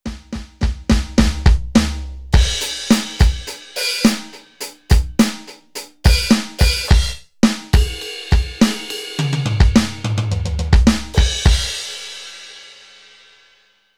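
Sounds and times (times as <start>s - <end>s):
Donner DED-200 pop drum kit being tested: 0.0s - 13.4s.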